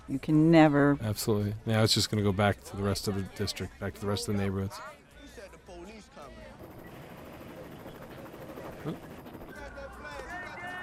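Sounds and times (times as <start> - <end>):
speech: 0.1 - 5.0, 8.8 - 9.1
helicopter rotor roar: 6.6 - 10.1.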